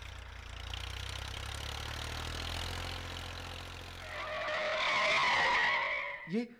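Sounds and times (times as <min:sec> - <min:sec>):
military vehicle engine rumbling: 0:00.0 - 0:06.4
military vehicle tires squealing in a skid while braking hard: 0:04.0 - 0:06.4.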